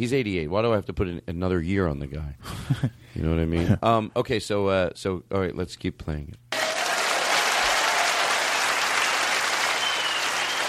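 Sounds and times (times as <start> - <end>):
speech: 0.0 - 6.4
audience applause: 6.5 - 10.6.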